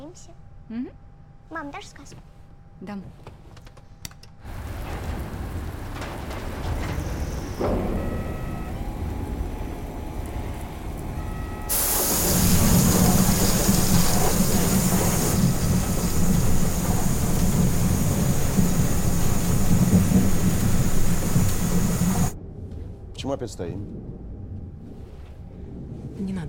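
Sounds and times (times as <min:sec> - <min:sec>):
speech: 0:00.1 - 0:03.4, 0:23.4 - 0:24.2
thunderstorm rain heard from aboard a passenger airplane: 0:04.4 - 0:22.4
de-icing fluid spraying onto a passenger airplane: 0:04.5 - 0:22.4
deep rumble of thunder in a thunderstorm: 0:04.5 - 0:26.4.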